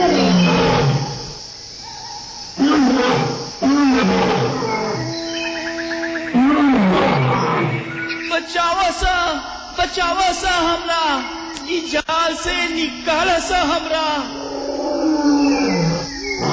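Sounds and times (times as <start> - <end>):
lion caught in a net roaring: 0.0 - 8.2, 14.4 - 16.5
steady hum: 0.0 - 16.5
speech: 8.6 - 14.5.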